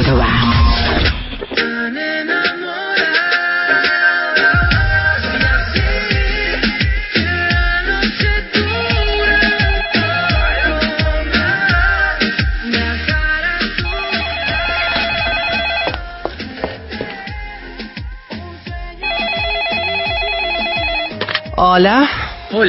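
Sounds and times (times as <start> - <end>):
loud steadily thumping music: 0.0 - 22.6
landline telephone ringing in trilling bursts: 9.2 - 11.1, 13.8 - 16.2, 19.0 - 21.2
speech: 21.8 - 22.6.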